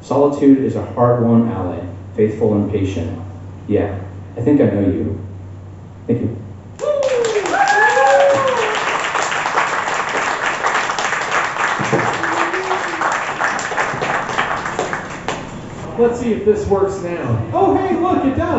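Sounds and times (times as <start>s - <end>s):
speech: 0.1s - 5.3s, 6.1s - 6.4s, 16.0s - 18.5s
whoops and vocal calls: 6.8s - 9.2s, 11.8s - 13.7s
audience applauding: 6.8s - 15.9s.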